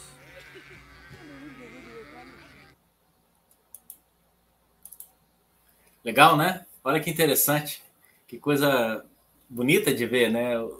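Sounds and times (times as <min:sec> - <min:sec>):
flock of sheep bleating: 0:00.0 - 0:02.8
shepherd calling: 0:00.0 - 0:02.8
speech: 0:06.0 - 0:10.7.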